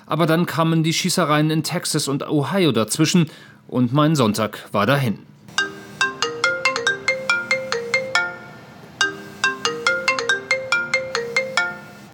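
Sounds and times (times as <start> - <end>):
speech: 0.1 - 5.3
phone ringtone with chiming notes: 5.5 - 12.1.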